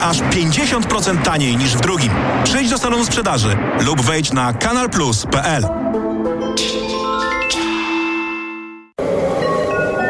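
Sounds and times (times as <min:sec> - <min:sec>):
speech: 0:00.0 - 0:06.1
ringing station chime tones: 0:05.7 - 0:10.0
train pulling into the station: 0:09.0 - 0:10.0.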